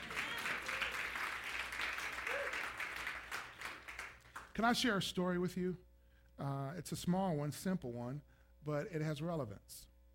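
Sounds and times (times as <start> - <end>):
room full of people clapping: 0.0 - 4.7
speech: 4.6 - 9.9.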